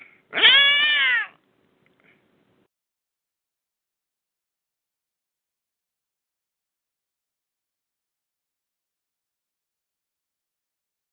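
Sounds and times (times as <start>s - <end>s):
cat yowling and meowing: 0.3s - 1.4s.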